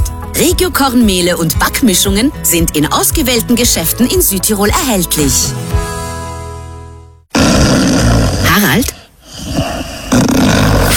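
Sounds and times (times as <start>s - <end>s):
speech: 0.4s - 5.8s
man snoring loudly in sleep: 7.3s - 10.9s.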